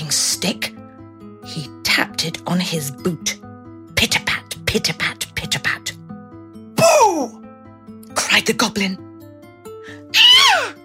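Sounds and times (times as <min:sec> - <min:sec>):
speech: 0:00.1 - 0:00.8, 0:01.5 - 0:05.1, 0:08.4 - 0:09.1
loud shrill scream: 0:10.1 - 0:10.8.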